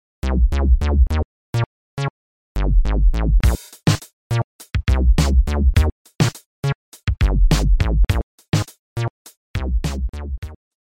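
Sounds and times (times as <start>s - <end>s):
bassline: 0.2s - 5.9s, 6.6s - 8.2s, 9.0s - 10.6s.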